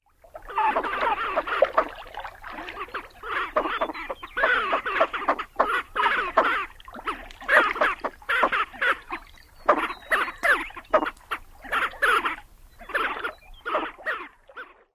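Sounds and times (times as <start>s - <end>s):
courting male lesser scaup calling: 0.4s - 14.9s.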